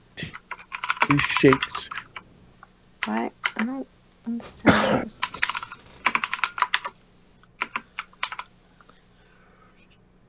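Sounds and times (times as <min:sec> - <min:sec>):
typing on a non-mechanical computer keyboard: 0:00.2 - 0:02.2, 0:03.0 - 0:03.7, 0:05.2 - 0:07.0, 0:07.6 - 0:08.7
speech: 0:01.1 - 0:01.9, 0:03.1 - 0:05.4.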